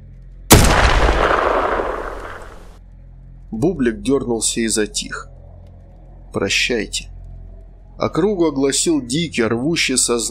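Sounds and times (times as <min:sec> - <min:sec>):
gunshot: 0:00.5 - 0:02.7
speech: 0:03.5 - 0:05.4, 0:06.3 - 0:07.1, 0:08.0 - 0:10.2.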